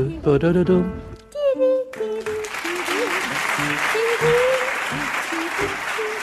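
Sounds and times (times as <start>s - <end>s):
music: 0.0s - 6.2s
audience applause: 2.2s - 6.2s.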